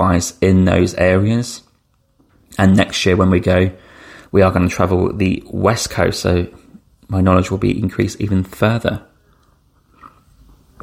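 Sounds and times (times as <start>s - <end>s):
hiss: 0.0s - 10.8s
speech: 0.1s - 1.6s, 2.6s - 9.1s
person sipping tea: 9.2s - 10.8s
swallow: 9.8s - 10.8s.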